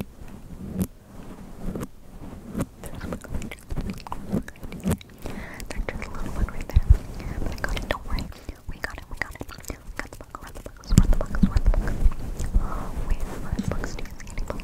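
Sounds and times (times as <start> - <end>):
microphone clicks, taps and rustles: 2.5 - 8.3, 9.2 - 14.6
soft whispery mouth-like noises: 2.8 - 14.6.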